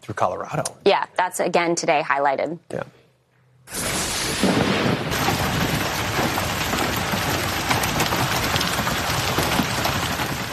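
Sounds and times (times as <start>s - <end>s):
speech: 0.0s - 3.0s
large hailstones hammering a parked car: 3.8s - 10.5s.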